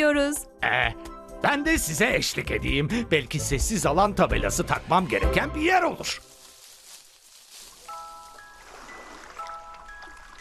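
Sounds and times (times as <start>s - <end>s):
speech: 0.0s - 6.3s
sea waves washing: 7.7s - 10.3s.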